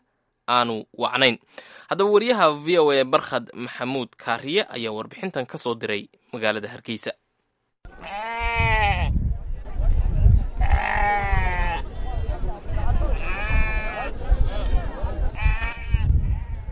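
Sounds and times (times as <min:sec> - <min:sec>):
speech: 0:00.5 - 0:07.2
sheep and goats bleating at a busy livestock market in Hargeisa: 0:07.9 - 0:09.2, 0:10.6 - 0:12.1, 0:13.0 - 0:14.1, 0:15.3 - 0:16.7
crowd and animal noise at a livestock market: 0:07.9 - 0:16.7.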